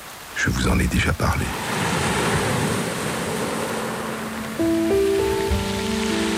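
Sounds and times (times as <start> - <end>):
speech: 0.4 - 1.9, 4.6 - 4.9
sea waves breaking against a crumbling cliff on a beach in Norfolk England: 0.6 - 6.3
soft sustained musical tones: 3.6 - 6.3.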